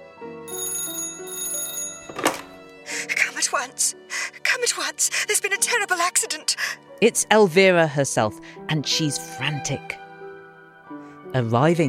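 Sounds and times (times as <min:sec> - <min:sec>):
old-fashioned telephone bell ringing: 0:00.4 - 0:02.6
speech: 0:03.4 - 0:10.0, 0:11.3 - 0:11.8.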